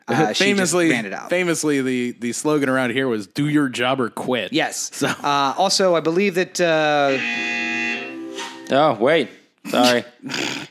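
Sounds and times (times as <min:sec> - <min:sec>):
speech: 0:00.1 - 0:07.6, 0:08.7 - 0:10.6
electronic buzzer tone: 0:07.1 - 0:08.7.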